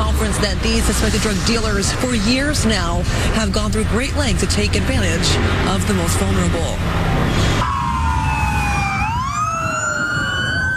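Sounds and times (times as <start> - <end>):
steady rumble of traffic: 0.0 - 10.7
speech: 0.2 - 7.7
emergency vehicle sirens wailing in Southern California: 6.1 - 10.7.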